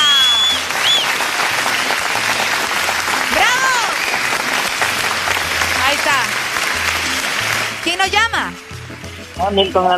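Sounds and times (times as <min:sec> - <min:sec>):
whistles: 0:00.0 - 0:01.2
crowd clapping: 0:00.0 - 0:09.9
speech: 0:09.4 - 0:09.9.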